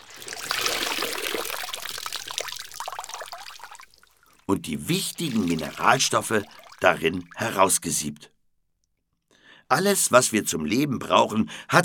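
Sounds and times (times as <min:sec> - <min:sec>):
water squeezed out of apple mush: 0:00.0 - 0:07.8
speech: 0:04.5 - 0:08.3, 0:09.7 - 0:11.8.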